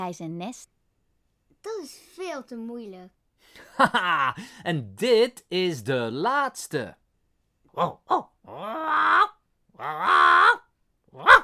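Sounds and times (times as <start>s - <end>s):
speech: 0.0s - 0.8s, 1.6s - 7.0s, 7.8s - 10.6s
bird mimicking a dog's bark: 7.7s - 11.4s.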